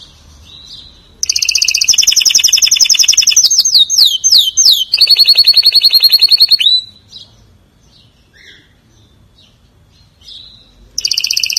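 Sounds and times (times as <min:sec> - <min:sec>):
canary delivering loud very fast trills and swooping notes: 0:00.0 - 0:07.3, 0:10.2 - 0:11.5.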